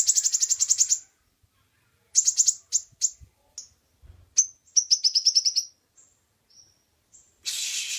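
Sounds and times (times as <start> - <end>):
Oriental magpie-robin singing a rattle of high notes, chips and buzzy bursts: 0.0 - 1.0, 2.2 - 3.8, 4.4 - 7.3.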